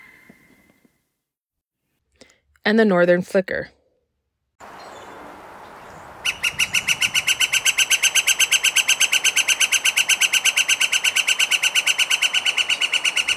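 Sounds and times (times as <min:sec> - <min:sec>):
speech: 0:02.7 - 0:03.8
pileated woodpecker calling in ringing notes: 0:04.6 - 0:13.3.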